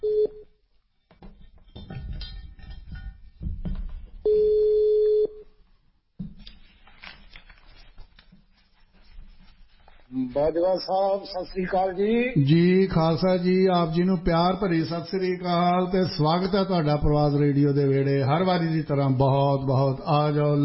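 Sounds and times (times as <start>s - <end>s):
telephone dialing tone while a call is placed: 0.0s - 0.4s, 4.3s - 5.4s
faint noise: 0.0s - 20.6s
speech: 10.4s - 20.6s.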